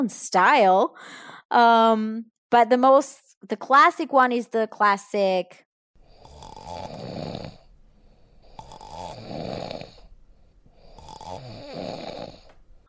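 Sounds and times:
speech: 0.0s - 5.6s
person imitating classic snoring: 6.0s - 7.7s, 8.4s - 10.1s, 10.8s - 12.6s.

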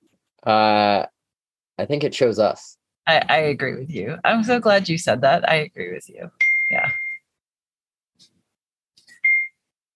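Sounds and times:
speech: 0.4s - 1.1s, 1.8s - 7.0s
bright electronic alert dings: 6.4s - 7.2s.

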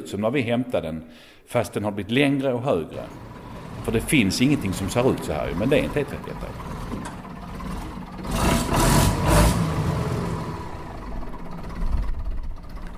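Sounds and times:
speech: 0.0s - 7.0s
heavy six-cylinder truck diesel engine idling in a lengthened tractor: 2.9s - 12.9s.

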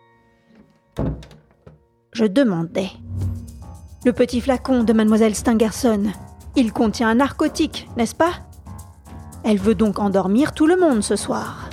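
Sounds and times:
door latch rattling as it settles: 0.6s - 1.8s
bedroom door thudding shut: 1.0s - 1.8s
speech: 2.2s - 3.0s, 4.0s - 8.5s, 9.5s - 11.7s.

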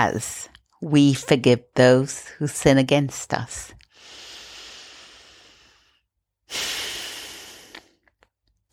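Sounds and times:
speech: 0.0s - 4.2s, 6.5s - 6.7s
deep human breathing: 3.9s - 8.0s.

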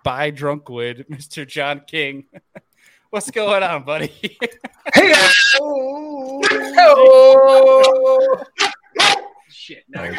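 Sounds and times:
speech: 0.0s - 2.5s, 3.1s - 8.7s, 9.6s - 10.1s
laughter: 2.2s - 5.7s
dog barking: 9.0s - 9.4s.

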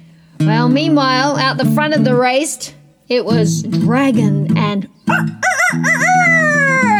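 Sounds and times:
speech: 0.5s - 6.4s
rooster crowing cock-a-doodle-doo: 5.1s - 6.9s.

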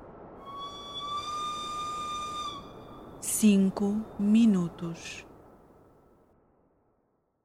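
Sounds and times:
constant hiss of noise: 0.0s - 7.4s
single shrill whistle blowing from train cabin doors: 0.4s - 3.2s
speech: 3.4s - 5.3s.

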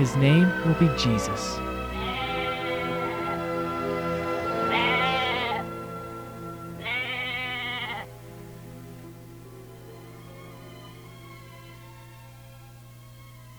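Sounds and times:
speech: 0.0s - 1.7s
sheep bleating: 1.9s - 3.6s, 4.6s - 5.8s, 6.8s - 8.1s.

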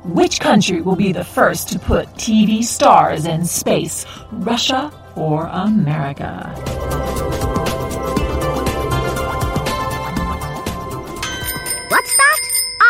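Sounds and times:
speech: 0.1s - 7.4s
bright halftime bell ringing: 6.5s - 12.8s.

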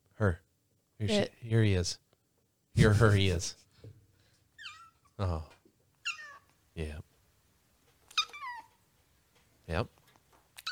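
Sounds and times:
speech: 0.2s - 0.4s, 1.0s - 2.0s, 2.8s - 3.6s, 5.2s - 5.6s, 6.8s - 7.1s, 9.7s - 10.0s
cat meowing: 6.0s - 6.5s, 8.1s - 8.8s.

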